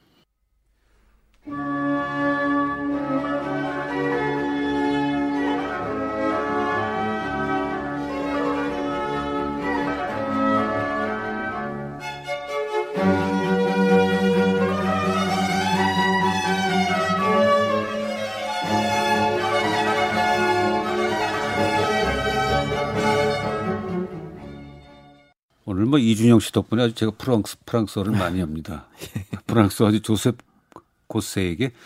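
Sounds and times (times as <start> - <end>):
orchestral music with violin and cello in sinfonia concertante style: 1.4 - 25.4
speech: 26.0 - 30.5, 31.1 - 31.8
laughter: 29.0 - 29.6.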